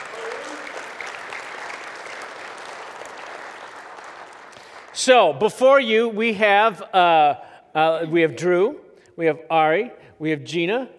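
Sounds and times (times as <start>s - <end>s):
audience applause: 0.0s - 5.0s
speech: 5.0s - 10.9s.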